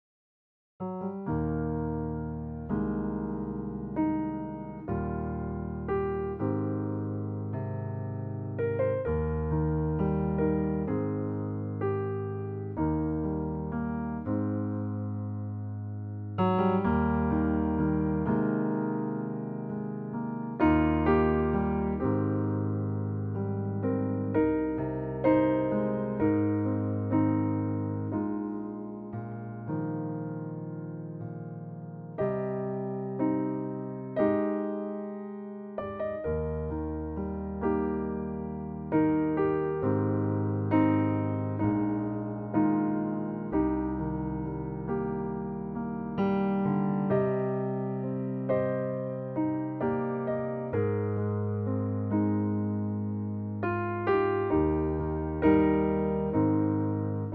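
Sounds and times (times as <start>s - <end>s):
Bechstein piano with binaural reverb: 0.8s - 57.3s.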